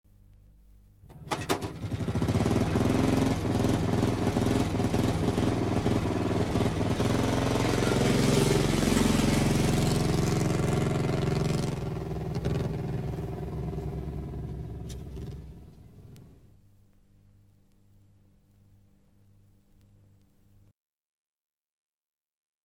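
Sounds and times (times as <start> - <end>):
motorcycle pulling away: 1.1 - 16.3.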